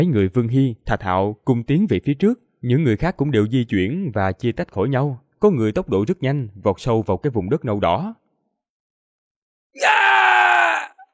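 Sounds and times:
speech: 0.0 - 8.2, 9.8 - 10.3
person screaming in agony while attacked by a red-furred monster: 9.8 - 11.1.

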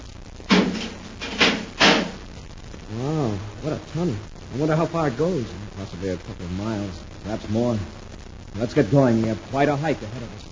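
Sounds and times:
heavy tunnel door swinging shut and latching: 0.5 - 2.2
speech: 2.9 - 10.5.

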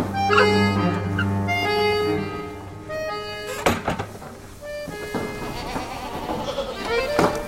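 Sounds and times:
goats bleating on a farm: 0.1 - 2.6, 4.9 - 7.3.

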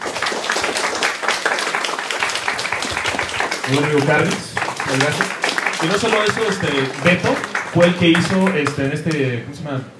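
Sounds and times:
audience applause at the close of a talk on a comic series: 0.0 - 9.4
speech: 3.7 - 9.9.

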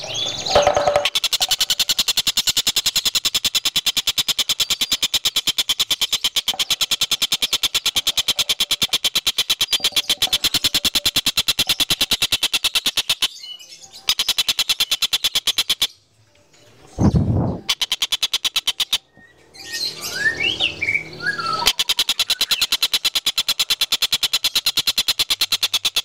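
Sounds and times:
Van Hasselt's sunbird sharp ticking pulses: 0.0 - 13.3, 14.0 - 16.0, 17.4 - 19.1, 21.0 - 26.0
Van Hasselt's sunbird song: 0.0 - 16.0, 16.9 - 26.0
Van Hasselt's sunbird squeaky chirps: 0.0 - 16.0, 17.0 - 26.0.

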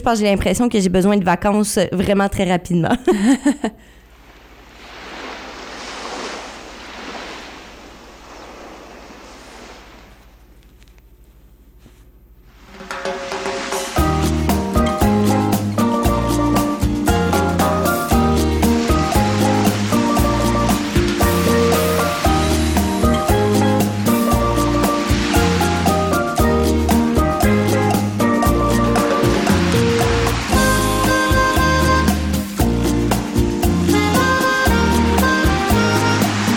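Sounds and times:
speech: 0.0 - 4.0
ocean surf rushing: 4.0 - 10.6, 12.5 - 36.5
upbeat intro music track with bass and melody: 13.0 - 36.5.

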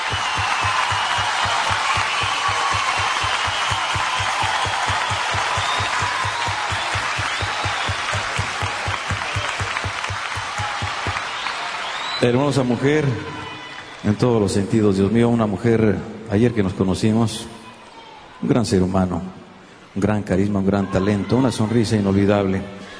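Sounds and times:
loud sustained audience applause for a female guest performer: 0.0 - 14.6
speech: 12.2 - 13.4, 14.0 - 17.6, 18.4 - 19.4, 20.0 - 22.8.

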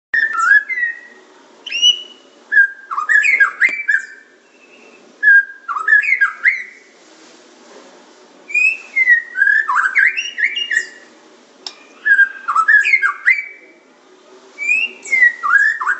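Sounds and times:
Oriental magpie-robin singing: 0.2 - 6.8, 8.5 - 11.1, 11.8 - 13.6, 14.6 - 15.9.

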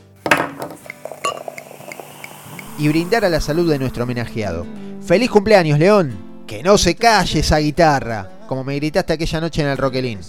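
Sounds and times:
glass bottle clinking while being handled and opened: 0.1 - 2.6
speech: 0.2 - 0.8, 2.8 - 10.2.

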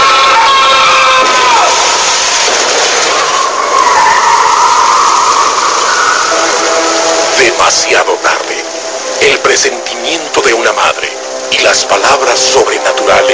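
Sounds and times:
car speeding and skidding on a street: 0.0 - 7.6
speech: 9.3 - 13.3.

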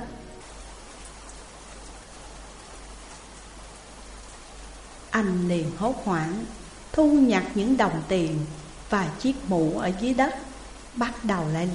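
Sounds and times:
heavy rain pouring down on a street: 0.0 - 11.7
speech: 5.2 - 11.7.

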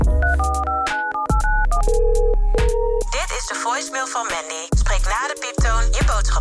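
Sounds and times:
telephone keypad tones: 0.1 - 3.7
telephone voicemail electronic beeps: 0.1 - 4.9
person speaking over voicemail tones: 3.1 - 6.3.

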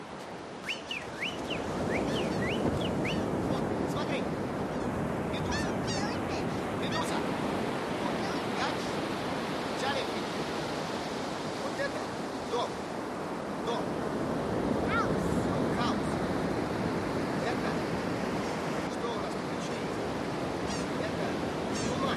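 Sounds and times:
steady roar of surf: 0.0 - 22.1
wind by the sea: 0.0 - 22.1
seagull calling by the sea: 0.6 - 3.7, 5.4 - 7.3, 20.5 - 22.1.

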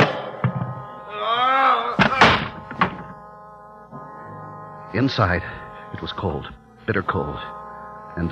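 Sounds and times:
solid thunks of heavy door settling: 0.0 - 0.8, 2.0 - 3.1
heavy meat storage room door heaved open: 1.8 - 3.2
dull knocks: 2.0 - 3.1
speech: 4.9 - 7.6, 8.2 - 8.3.

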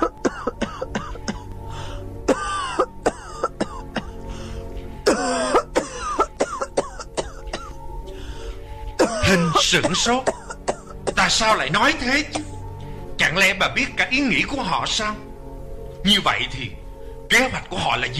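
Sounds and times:
old woman in a violent coughing fit: 0.0 - 1.5, 2.3 - 4.2, 5.0 - 7.8, 9.0 - 11.4, 12.3 - 12.6
speech: 9.7 - 10.4, 11.3 - 12.5, 13.4 - 15.3, 16.0 - 18.1.

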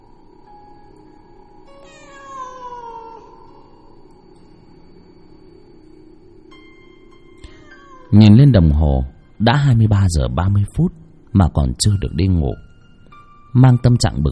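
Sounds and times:
steady hiss: 0.0 - 14.2
cat yowling plaintively outside a window: 1.7 - 4.0, 7.5 - 8.2
speech: 8.1 - 12.6, 13.5 - 14.2.

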